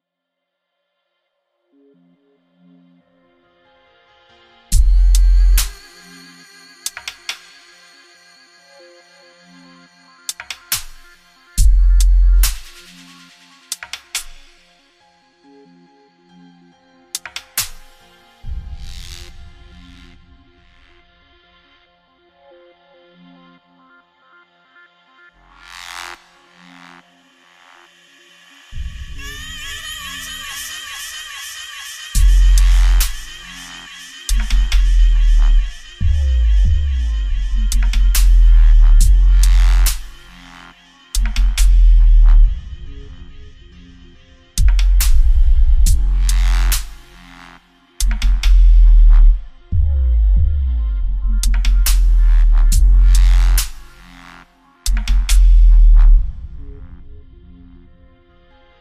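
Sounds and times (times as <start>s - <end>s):
deep bass boosted song: 4.7s - 6.3s, 11.5s - 14.3s, 32.2s - 58.2s.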